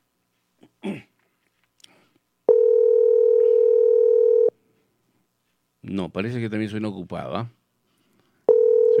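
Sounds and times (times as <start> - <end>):
person clearing throat: 0.6 - 1.2
ringing tone of an outgoing telephone call: 2.5 - 4.6, 8.5 - 8.9
speech: 6.1 - 7.6.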